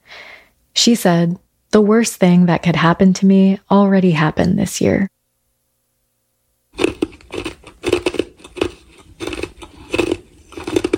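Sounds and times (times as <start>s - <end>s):
speech: 0.8s - 5.2s
someone chewing ice: 6.8s - 10.9s.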